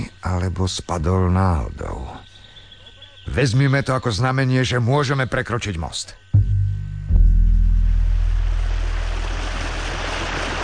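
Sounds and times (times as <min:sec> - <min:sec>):
speech: 0:00.2 - 0:02.2, 0:03.3 - 0:06.2
low hum: 0:06.4 - 0:10.6
wild river rushing below a bridge: 0:08.2 - 0:10.6.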